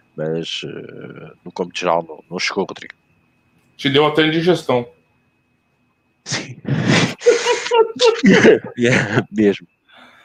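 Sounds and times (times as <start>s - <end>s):
speech: 0.2s - 3.0s, 3.8s - 5.0s, 6.2s - 6.8s, 7.7s - 9.8s
person sneezing: 6.3s - 8.6s
laughter: 6.7s - 9.4s.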